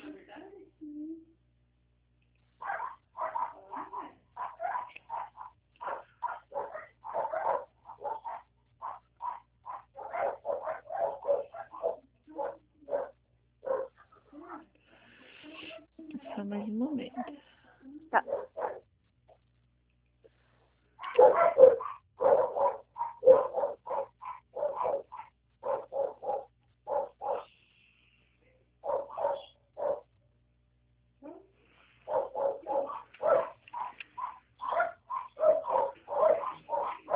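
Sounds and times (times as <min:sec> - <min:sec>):
large and small dogs barking: 0:02.6 - 0:14.3, 0:18.2 - 0:18.9, 0:21.0 - 0:27.5, 0:28.8 - 0:30.2, 0:32.0 - 0:37.1.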